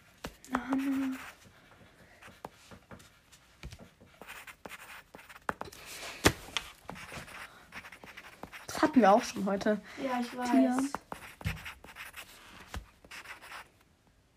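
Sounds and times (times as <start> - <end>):
pen scribbling quickly on paper during a word game: 0.8 - 1.5, 4.2 - 5.6, 7.0 - 9.4, 10.2 - 12.3, 13.0 - 13.7
speech: 9.0 - 11.1.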